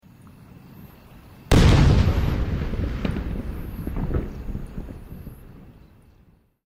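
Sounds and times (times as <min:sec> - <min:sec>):
oversized fireworks exploding: 0:01.5 - 0:06.5.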